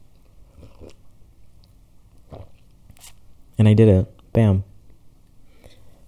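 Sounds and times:
person slurping a drink: 0.4s - 1.0s, 2.3s - 3.2s
swallowing gulp: 0.5s - 1.0s, 2.2s - 3.1s
speech: 3.6s - 4.7s.

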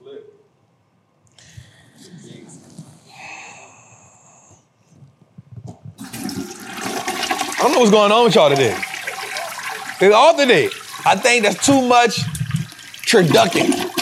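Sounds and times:
toilet flushing: 6.0s - 13.9s
speech: 7.6s - 8.9s, 10.0s - 12.3s, 13.1s - 13.8s.

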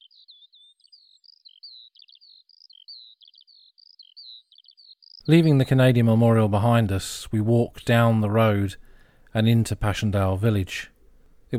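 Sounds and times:
bird singing in the trees above Crest Farm at Passchendaele: 0.0s - 6.8s
speech: 5.3s - 10.9s.

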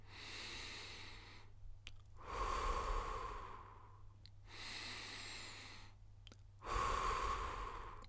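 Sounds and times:
slow deep breathing in and out during a relaxation exercise: 0.1s - 1.6s, 2.2s - 6.0s, 6.6s - 8.0s.

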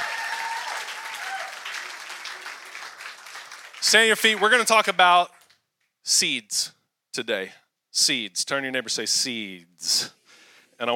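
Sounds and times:
church congregation clapping: 0.0s - 5.5s
speech: 3.8s - 5.4s, 6.0s - 10.2s.

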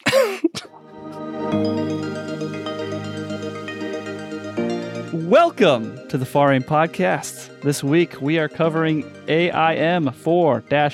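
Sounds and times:
person coughing: 0.0s - 0.8s
sustained musical tone: 0.7s - 10.9s
speech: 5.3s - 10.9s.

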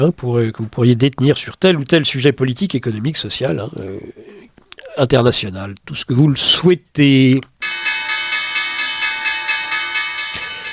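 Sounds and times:
speech: 0.0s - 4.4s, 5.0s - 7.8s
stock exchange opening bell ringing: 7.6s - 10.7s.

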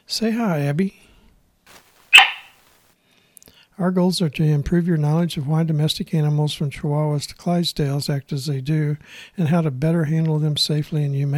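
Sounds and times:
speech: 0.1s - 1.1s, 3.8s - 11.3s
faint rustle: 1.7s - 3.0s
cattle dog barking in Center, Missouri, USA: 2.1s - 2.6s.

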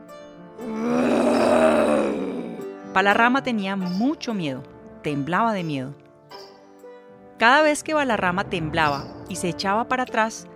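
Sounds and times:
deep, drawn-out monster growl: 0.6s - 2.7s
speech: 3.0s - 6.0s, 7.4s - 10.5s.

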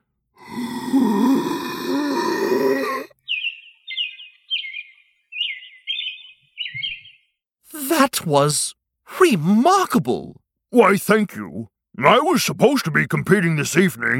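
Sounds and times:
long strained breathy vocal sound imitating a bird: 0.4s - 3.1s
short bright whistled chirps mimicking birdsong: 3.2s - 7.4s
speech: 8.1s - 14.1s.

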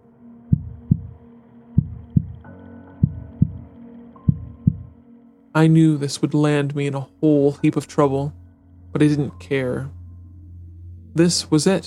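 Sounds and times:
faint tonal hum: 0.0s - 11.8s
heartbeat thumping in paired low beats: 0.5s - 1.2s, 1.8s - 5.0s
speech: 5.6s - 10.0s, 11.2s - 11.8s.

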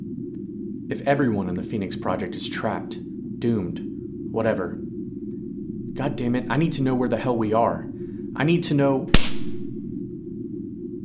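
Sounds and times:
speech: 0.9s - 4.9s, 6.0s - 9.3s
low lingering rumble: 3.8s - 10.8s
sharp slap to the face: 9.1s - 9.8s.

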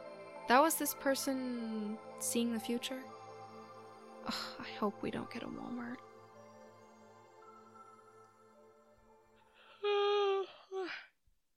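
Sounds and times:
speech: 0.5s - 3.2s, 4.2s - 6.1s
person yawning: 9.6s - 11.1s
person groaning: 9.8s - 11.1s.

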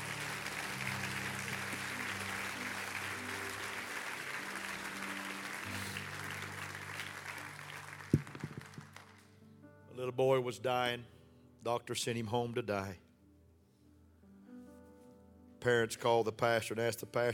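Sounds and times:
audience clapping: 0.0s - 9.3s
speech: 10.0s - 13.0s, 15.6s - 17.3s.

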